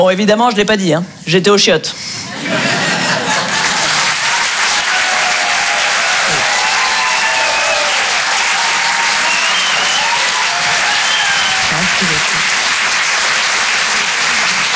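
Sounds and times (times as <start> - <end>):
speech: 0.0 - 2.6
laughter: 2.3 - 14.7
audience applause: 2.4 - 14.7
faint cheers: 3.8 - 12.9.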